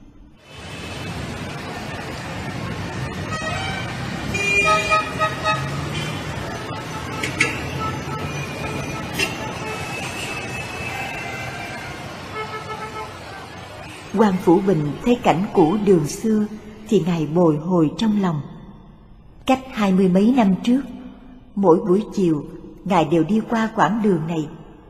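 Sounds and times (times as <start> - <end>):
busy street traffic rumbling: 0.0 - 24.8
car horns tooting: 3.1 - 14.1
speech: 14.2 - 18.5, 19.5 - 20.9, 21.6 - 24.6.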